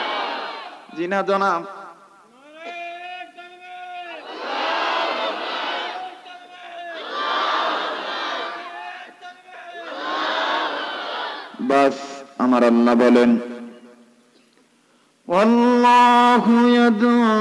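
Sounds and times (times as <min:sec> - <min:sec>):
large crowd at a religious gathering chanting loudly: 0:00.0 - 0:00.9, 0:04.0 - 0:11.6
speech: 0:01.0 - 0:01.8, 0:11.7 - 0:13.5, 0:15.4 - 0:15.6, 0:16.4 - 0:17.3.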